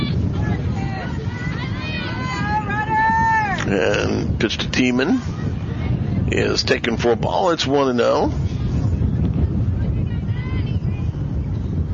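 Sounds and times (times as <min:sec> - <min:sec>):
faint indistinct voices: 0:00.0 - 0:11.9
outdoor wind buffeting during a baseball game: 0:00.0 - 0:11.9
speech: 0:03.7 - 0:05.4, 0:06.3 - 0:08.4.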